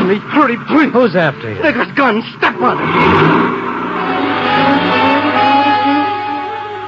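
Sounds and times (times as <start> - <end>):
speech: 0.1 - 4.0
car engine revving as the car accelerates through a traffic light: 2.3 - 6.8.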